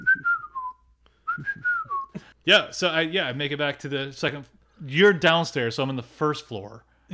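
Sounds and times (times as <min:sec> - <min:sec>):
person whistling a short melodic phrase: 0:00.0 - 0:02.3
speech: 0:02.4 - 0:07.1.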